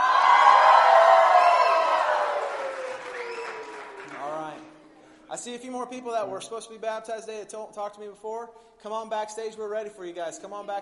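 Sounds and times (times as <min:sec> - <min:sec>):
large crowd cheering and whooping: 0:00.0 - 0:04.2
speech: 0:05.4 - 0:10.7.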